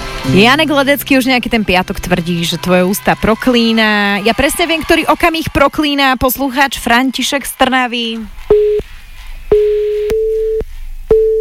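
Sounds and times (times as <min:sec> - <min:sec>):
speech: 0:00.2 - 0:08.8
phone busy tone from a blocked call: 0:09.5 - 0:11.3.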